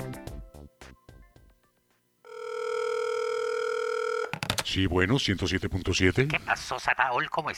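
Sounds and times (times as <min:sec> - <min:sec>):
telephone ringing for incoming listener call to a radio station: 0:02.2 - 0:04.5
speech: 0:04.7 - 0:07.5.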